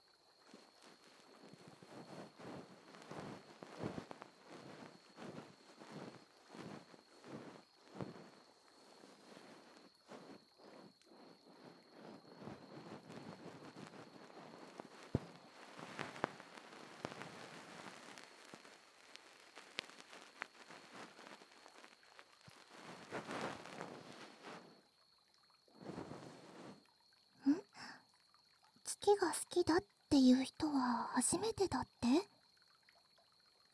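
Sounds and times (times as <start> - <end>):
bonten ear-pick fluff rubbing during ear cleaning: 0.9 - 18.6, 22.7 - 24.6
speech: 29.1 - 32.3.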